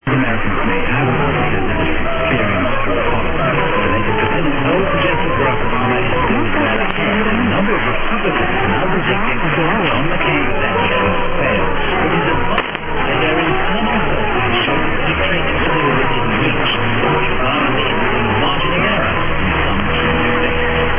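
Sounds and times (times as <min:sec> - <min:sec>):
radio station from Romania received over the UK on 909: 0:00.0 - 0:20.9.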